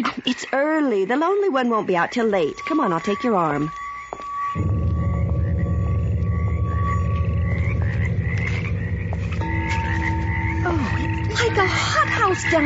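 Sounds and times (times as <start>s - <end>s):
speech: 0.0s - 3.9s, 11.6s - 12.6s
insects buzzing in a night ravine: 0.5s - 12.6s.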